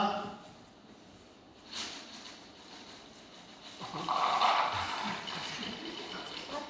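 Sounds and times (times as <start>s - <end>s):
drinking water pouring into a cup: 4.0s - 6.6s.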